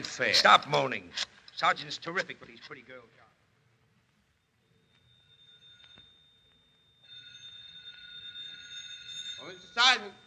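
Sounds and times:
speech: 0.0s - 3.3s, 9.4s - 10.2s
faint hiss: 0.0s - 10.2s
telephone ringing with a bright sustained electronic ring: 4.7s - 10.2s.

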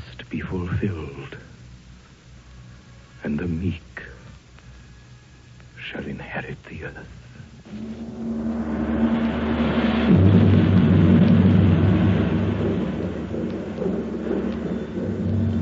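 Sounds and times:
speech: 0.3s - 1.4s, 3.2s - 4.0s, 6.5s - 8.4s
steady low roar: 7.6s - 15.5s
thunder rumble of an approaching storm near a valley: 7.7s - 15.5s.

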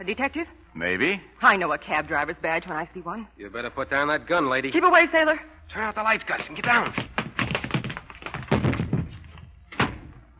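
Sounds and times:
speech: 0.0s - 7.6s
person tripping over their own feet and falling: 6.3s - 10.0s.

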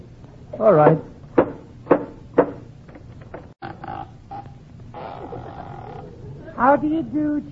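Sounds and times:
speech: 0.6s - 1.1s, 6.7s - 7.5s
firm knocking on a door: 0.8s - 2.6s.

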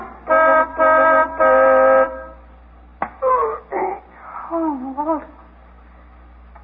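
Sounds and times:
car horn honking on a dark street: 0.3s - 2.5s
person speaking: 3.2s - 5.5s.

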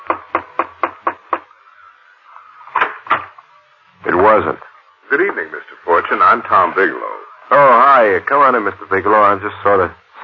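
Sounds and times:
knocking on a chamber door: 0.0s - 1.5s
speech: 4.3s - 10.2s.

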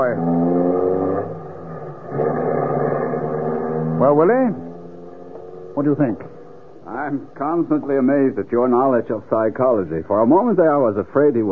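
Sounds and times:
car engine revving as the car pulls off: 0.0s - 7.6s
speech: 4.1s - 4.6s, 5.8s - 6.3s, 6.9s - 11.5s.

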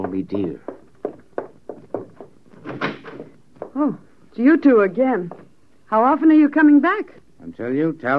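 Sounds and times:
soft handling thuds and clunks: 0.0s - 4.0s
speech: 0.1s - 0.7s, 3.8s - 8.1s
door being opened: 2.0s - 3.4s
door scraping swing: 2.2s - 3.4s.

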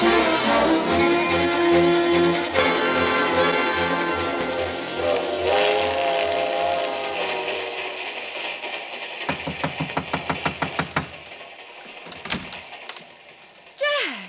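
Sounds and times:
passenger train rumbling along the rails: 0.0s - 14.2s
passenger train wheels clacking over the track joints: 8.1s - 13.8s.

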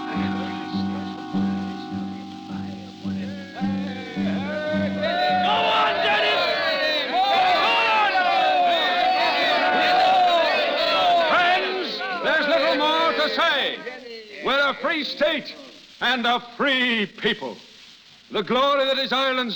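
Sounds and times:
rhythmic tonal backdrop: 0.0s - 6.0s
large crowd murmuring at an outdoor public meeting: 0.0s - 14.1s
speech: 14.8s - 17.7s, 18.3s - 19.5s.

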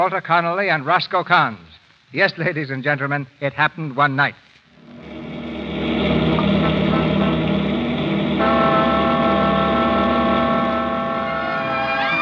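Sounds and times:
speech: 0.0s - 4.4s
cross-country motor bus engine idling: 4.9s - 12.1s.

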